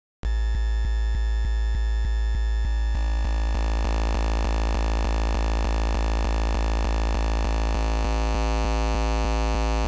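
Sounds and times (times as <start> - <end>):
gritty sine wave from LSDj wave synth: 0.3 - 9.8.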